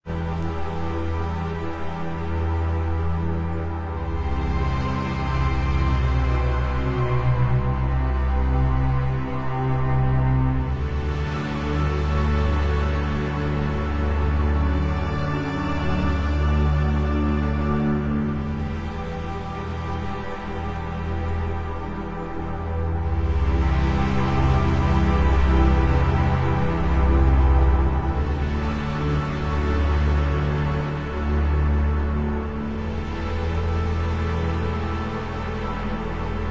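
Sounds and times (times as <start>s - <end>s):
music: 0.0s - 36.4s.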